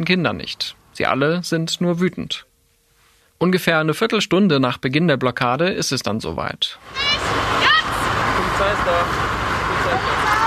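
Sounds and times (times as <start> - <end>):
speech: 0.0 - 2.5, 3.4 - 7.4, 8.6 - 10.4
brief rising tones: 6.8 - 10.4
small police car engine pulling up through street traffic: 6.8 - 10.4
steady roar of busy street traffic noise: 6.8 - 10.4
crowd chatter at an activist road blockade: 6.9 - 10.4.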